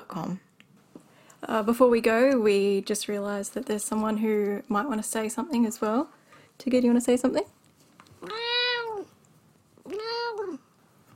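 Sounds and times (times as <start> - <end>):
speech: 0.1 - 0.5, 1.4 - 7.6
cat meowing: 8.2 - 9.1, 9.9 - 10.6.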